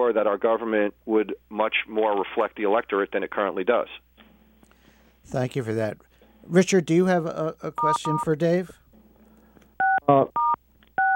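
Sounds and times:
speech: 0.0s - 4.1s, 5.2s - 8.8s, 10.1s - 10.4s
phone keypad dual-pitched electronic tones: 9.8s - 11.1s.

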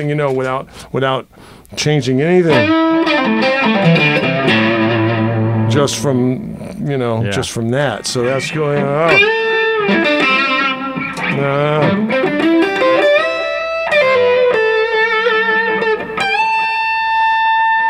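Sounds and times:
speech: 0.0s - 4.7s, 5.7s - 10.4s, 11.4s - 12.2s
electric guitar played through miniature delay pedal: 2.5s - 6.7s, 8.2s - 17.8s.

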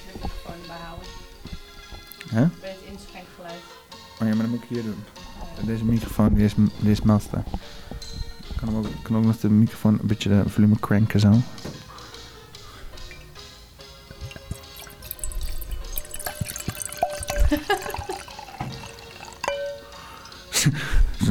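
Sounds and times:
speech: 0.7s - 1.3s, 2.3s - 8.0s, 8.6s - 11.8s
wine pouring and splashing into a glass: 13.0s - 13.5s, 14.1s - 20.5s
laughter: 17.4s - 18.1s, 20.5s - 21.2s.

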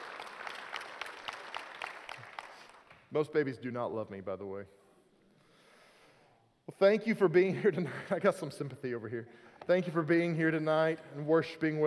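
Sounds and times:
room full of people clapping: 0.0s - 3.0s
speech: 3.1s - 4.8s, 6.8s - 11.8s.

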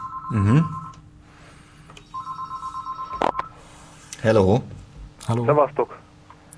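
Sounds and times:
telephone ringing with an electronic trill: 0.0s - 1.0s, 2.0s - 3.6s
speech: 0.3s - 0.8s, 4.2s - 4.7s, 5.3s - 6.0s.

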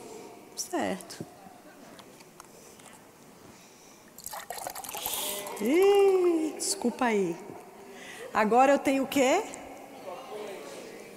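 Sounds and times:
speech: 0.6s - 1.4s, 5.6s - 7.6s, 8.3s - 9.6s
milk poured into a glass: 4.2s - 6.4s.

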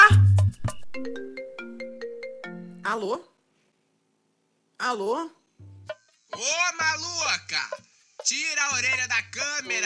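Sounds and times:
electronic phone ringtone of an incoming call: 0.8s - 2.8s
speech: 2.9s - 3.3s, 4.8s - 5.7s, 6.3s - 9.8s.

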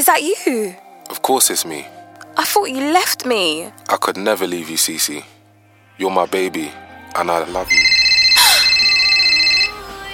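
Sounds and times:
speech: 0.0s - 5.4s, 6.0s - 8.0s
phone ringing with an electronic trill: 7.7s - 10.1s.

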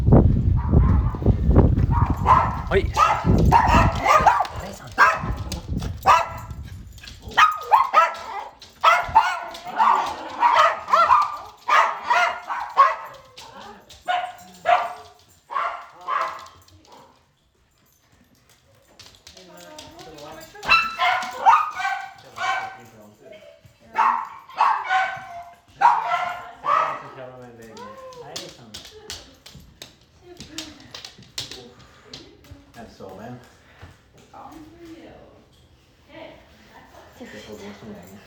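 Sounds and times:
dog barking: 0.6s - 1.2s, 1.8s - 6.6s, 7.3s - 17.2s, 20.6s - 22.9s, 23.9s - 27.3s
dog yipping: 1.9s - 6.5s, 7.3s - 13.3s, 14.0s - 16.5s, 20.6s - 22.8s, 24.0s - 27.2s
speech: 2.7s - 4.3s.

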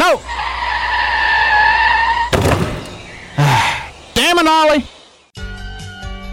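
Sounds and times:
car tires screeching in a skid: 0.0s - 4.2s
speech: 0.1s - 0.4s, 4.4s - 5.0s
heavy bang: 2.3s - 3.3s
sharp crunching thud: 2.3s - 3.6s.

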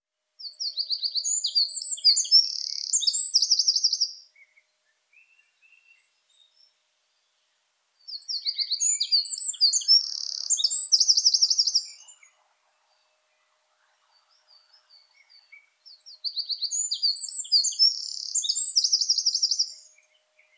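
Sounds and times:
Eurasian wren singing: 0.4s - 4.2s, 8.0s - 20.5s
faint bird chirps: 0.4s - 20.5s.

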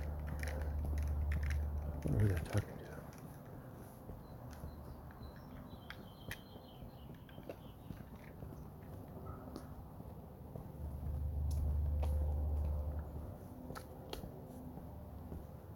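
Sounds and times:
birds chirping outdoors: 0.0s - 10.6s
low outdoor rumble: 0.0s - 15.7s
speech: 2.1s - 2.8s.

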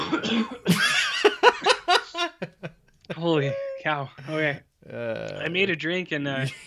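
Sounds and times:
person coughing from choking on an inhaled drink: 0.0s - 0.9s
speech: 0.3s - 0.8s, 3.2s - 6.6s
laughter: 0.6s - 3.8s, 6.4s - 6.6s.

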